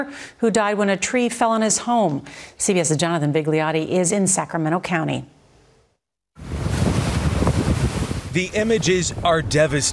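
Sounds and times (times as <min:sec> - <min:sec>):
speech: 0:00.0 - 0:05.4, 0:08.4 - 0:09.9
storm surge waves and strong wind battering a pier in Santa Cruz California: 0:06.4 - 0:09.9.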